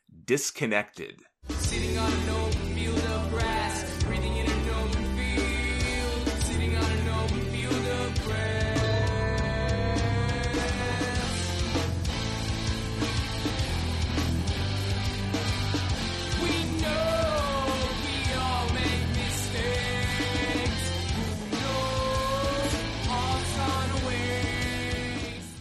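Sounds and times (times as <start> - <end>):
speech: 0.3 - 3.1
full-band rock song with drums, distorted guitars and vocals: 1.4 - 25.5.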